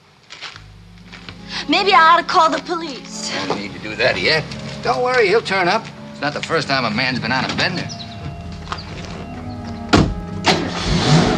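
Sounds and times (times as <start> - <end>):
car engine rumbling as the car pulls off: 0.6 - 11.3
speech: 1.7 - 8.0
sharp thuds: 9.9 - 11.3.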